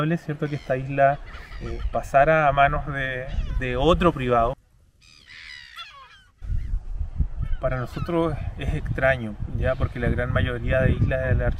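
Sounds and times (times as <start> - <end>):
speech: 0.0 - 4.6, 7.6 - 11.5
low blustery rumble: 0.0 - 5.0, 6.4 - 11.5
nesting seabirds such as herons and gulls calling on an island wetland: 0.0 - 8.3.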